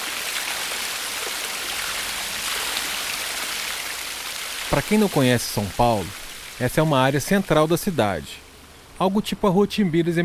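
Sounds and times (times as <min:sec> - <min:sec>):
urban waterfall rushing in central São Paulo, Brazil: 0:00.0 - 0:08.2
speech: 0:04.7 - 0:08.4, 0:09.0 - 0:10.2.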